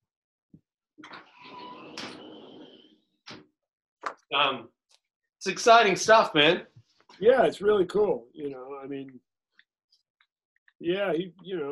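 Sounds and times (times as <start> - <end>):
door creaking shut: 1.0 - 3.4
speech: 4.3 - 4.8, 5.4 - 9.3, 10.8 - 11.6.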